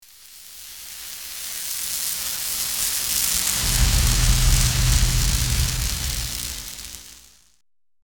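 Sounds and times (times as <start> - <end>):
lightning strike: 2.4 - 7.4.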